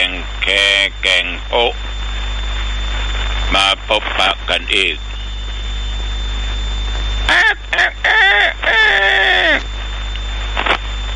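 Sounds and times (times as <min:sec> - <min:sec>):
steady hum: 0:00.0 - 0:11.1
speech: 0:00.5 - 0:01.9, 0:03.5 - 0:05.1
rooster crowing: 0:07.3 - 0:09.6
faint squawk: 0:07.3 - 0:09.7.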